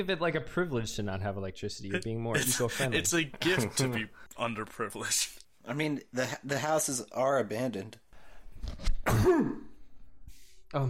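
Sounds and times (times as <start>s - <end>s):
speech: 0.0s - 8.0s, 8.6s - 9.7s
harsh forceful sneeze: 9.0s - 9.8s.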